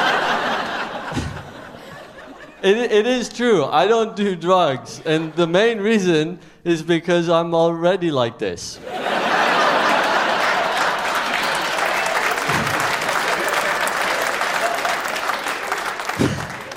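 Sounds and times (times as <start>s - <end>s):
laughter: 0.0s - 2.8s, 5.0s - 5.9s, 8.8s - 16.7s
speech: 2.6s - 9.0s
audience clapping: 9.4s - 16.7s.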